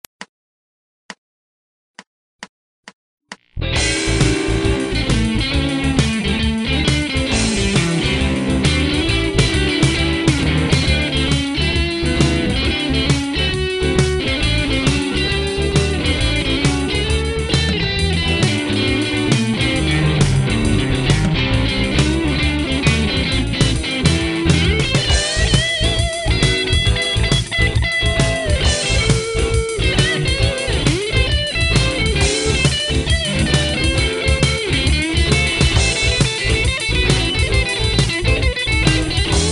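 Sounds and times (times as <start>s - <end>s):
blues groove on guitar: 3.6s - 39.5s.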